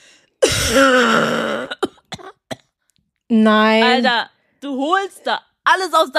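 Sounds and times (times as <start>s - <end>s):
person imitating a cough: 0.4s - 2.7s
speech: 0.7s - 1.5s, 3.3s - 6.1s.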